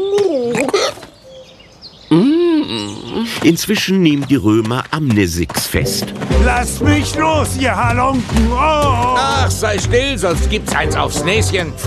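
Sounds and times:
voice imitating a hiccuping dove with gulping coos: 0:02.1 - 0:03.4
speech: 0:02.1 - 0:11.8.

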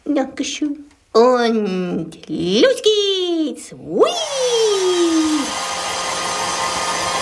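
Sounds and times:
speech: 0:00.1 - 0:05.6
hair dryer blowing with motor whine: 0:04.3 - 0:07.2.

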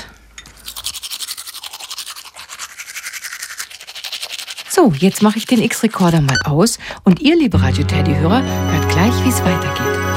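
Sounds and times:
teeth brushed with a toothbrush and toothpaste: 0:00.5 - 0:06.3
speech: 0:04.8 - 0:10.1.

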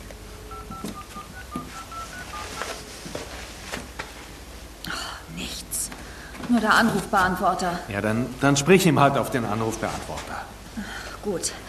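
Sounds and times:
telephone redialing with short keypad tones: 0:00.5 - 0:02.8
speech: 0:06.5 - 0:10.5, 0:11.2 - 0:11.6.

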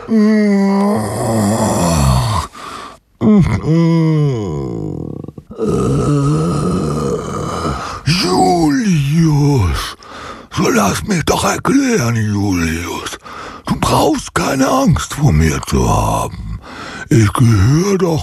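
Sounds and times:
long drawn-out pitiful groaning moan from a voice: 0:00.0 - 0:02.6, 0:03.2 - 0:09.8
speech: 0:00.1 - 0:01.6, 0:03.4 - 0:04.6, 0:11.6 - 0:13.0, 0:14.0 - 0:16.4, 0:17.1 - 0:18.2.

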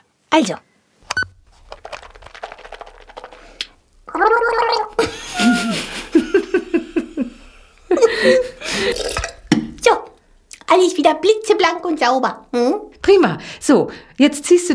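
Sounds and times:
speech: 0:00.4 - 0:00.7, 0:11.0 - 0:14.7
gargling while brushing teeth: 0:04.0 - 0:05.0, 0:08.6 - 0:09.5
laughter: 0:05.0 - 0:08.8.

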